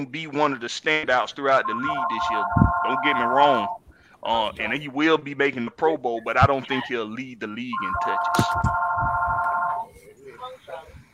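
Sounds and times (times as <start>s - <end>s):
speech: 0.0s - 9.1s
soft noise: 0.0s - 11.1s
telephone ringing with an electronic trill: 1.6s - 3.8s, 7.7s - 9.9s.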